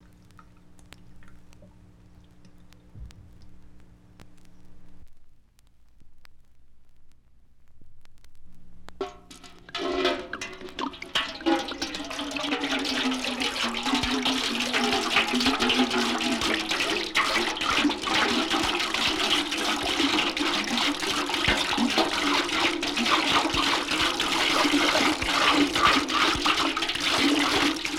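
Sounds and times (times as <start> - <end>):
water pouring into bucket: 9.3 - 27.9.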